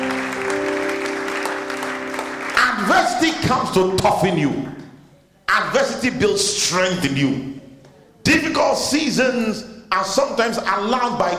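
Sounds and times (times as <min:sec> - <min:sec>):
crowd applause: 0:00.0 - 0:03.7
sustained organ-like chord humming: 0:00.0 - 0:04.8
speech: 0:02.9 - 0:04.8, 0:05.6 - 0:07.6, 0:08.2 - 0:11.3.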